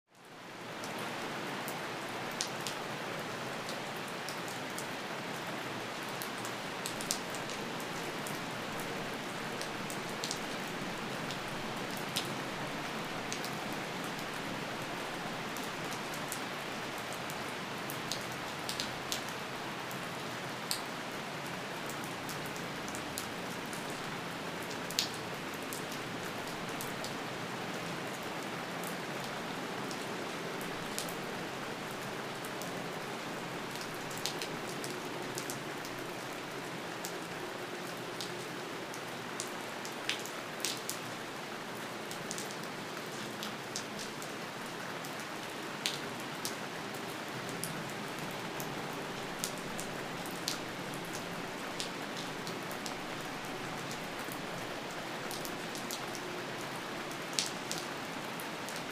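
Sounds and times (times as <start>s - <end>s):
light rain: 0.1s - 58.9s.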